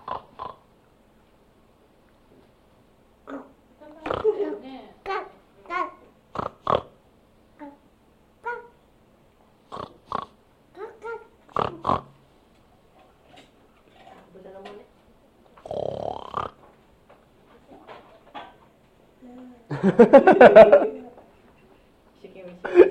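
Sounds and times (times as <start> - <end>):
person imitating pig with snorting grunting oinks: 0.0 - 0.6, 3.3 - 4.6, 6.3 - 6.9, 9.7 - 10.4, 11.0 - 12.2, 15.6 - 16.6
laughter: 19.7 - 21.1.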